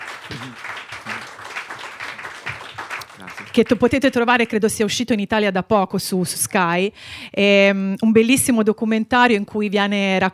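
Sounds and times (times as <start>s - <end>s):
audience applause in a talk setting: 0.0s - 4.0s
speech: 0.3s - 0.8s, 3.6s - 10.3s
voice fragments: 0.3s - 1.3s, 3.0s - 4.0s.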